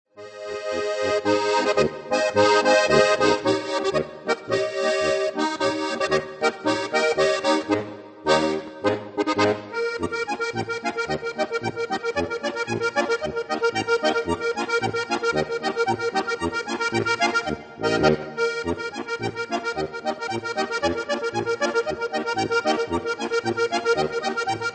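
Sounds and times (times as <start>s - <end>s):
cheerful accordion music: 0.2s - 24.7s.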